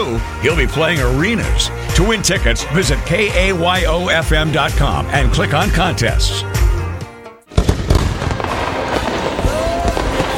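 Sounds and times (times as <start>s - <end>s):
speech: 0.0s - 6.6s
fireworks bursting in a rapid crackling barrage: 7.5s - 10.3s.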